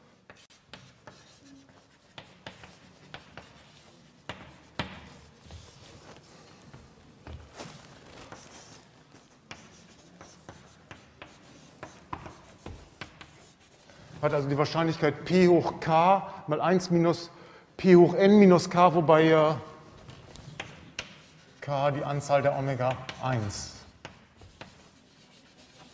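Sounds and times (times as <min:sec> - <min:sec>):
writing by hand during a maths lecture: 0:00.3 - 0:14.0, 0:20.1 - 0:25.9
speech: 0:14.2 - 0:19.7, 0:21.7 - 0:23.8.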